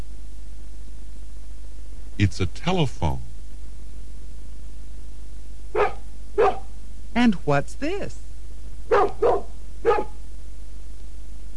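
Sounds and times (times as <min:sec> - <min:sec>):
steady low hum: 0:00.0 - 0:11.5
speech: 0:02.2 - 0:03.3, 0:07.5 - 0:08.3
dog barking: 0:05.7 - 0:06.8, 0:08.9 - 0:10.2.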